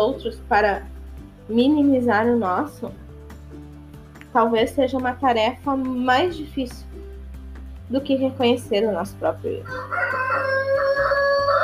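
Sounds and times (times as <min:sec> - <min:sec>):
speech: 0:00.0 - 0:03.6, 0:04.3 - 0:07.1, 0:07.9 - 0:10.9
rooster crowing: 0:09.7 - 0:11.6.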